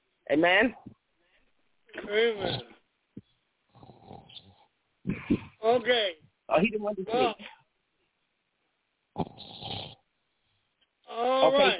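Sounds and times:
speech: 0:00.3 - 0:01.0, 0:02.0 - 0:02.7, 0:05.3 - 0:07.5, 0:09.2 - 0:09.5, 0:11.1 - 0:11.7
man snoring over a muffled band-limited phone line: 0:02.2 - 0:02.8, 0:03.8 - 0:04.6, 0:09.2 - 0:10.0.

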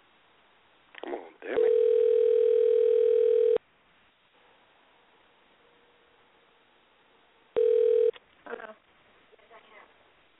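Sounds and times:
telephone dial tone while dialing a call: 0:01.6 - 0:03.6, 0:07.6 - 0:08.1.

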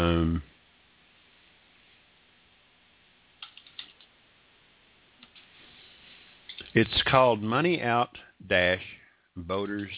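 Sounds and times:
light taps on a computer keyboard typing into a chat room: 0:03.4 - 0:04.1
speech: 0:06.8 - 0:09.9.

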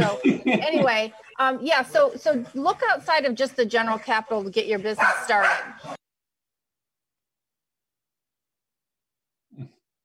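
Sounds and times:
speech: 0:00.1 - 0:06.0
dog bark: 0:05.0 - 0:05.9.

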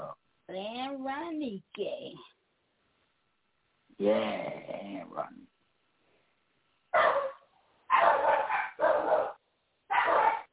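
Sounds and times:
speech: 0:00.5 - 0:02.3, 0:04.0 - 0:05.4
dog barking sharply and excitedly: 0:06.9 - 0:10.5.

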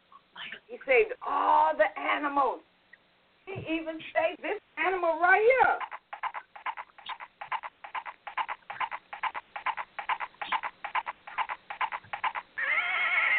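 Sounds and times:
speech: 0:00.7 - 0:02.7, 0:03.5 - 0:05.9
horse neighing: 0:08.8 - 0:13.3.

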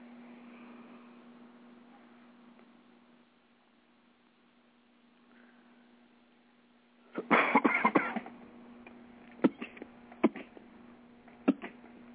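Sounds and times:
faint steady hum: 0:00.0 - 0:12.1
smoker's harsh hacking cough: 0:07.2 - 0:08.3, 0:09.4 - 0:10.6, 0:11.4 - 0:11.8.

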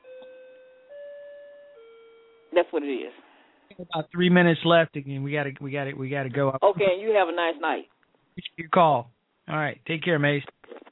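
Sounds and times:
clock chime: 0:00.0 - 0:02.6
speech: 0:02.5 - 0:10.5.

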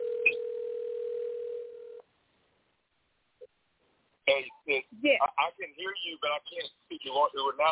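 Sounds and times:
telephone dial tone: 0:00.0 - 0:02.0
person talking: 0:04.3 - 0:07.7.

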